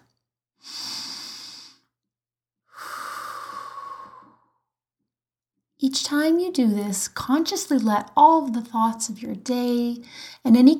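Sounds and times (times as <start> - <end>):
deep breathing in and out: 0.6 - 2.0, 2.7 - 4.7, 10.1 - 10.4
speech: 5.8 - 10.7.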